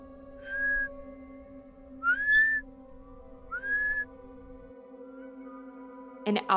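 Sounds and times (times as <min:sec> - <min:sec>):
low steady hum: 0:00.0 - 0:04.7
person whistling rising tones while walking through a cemetery after sundown: 0:00.4 - 0:01.0, 0:02.0 - 0:02.6, 0:03.5 - 0:04.1
speech: 0:06.3 - 0:06.5.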